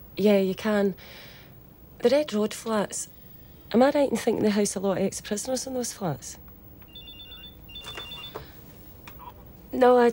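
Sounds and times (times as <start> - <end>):
low noise: 0.0 - 10.1
speech: 0.2 - 1.3, 2.0 - 6.4, 9.7 - 10.1
mobile phone ringing out of a handbag: 6.9 - 8.4.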